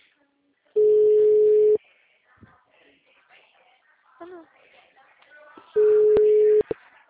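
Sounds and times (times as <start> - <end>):
people talking quietly: 0.0 - 7.0
telephone calling tone beeps: 0.8 - 1.8, 5.8 - 6.8.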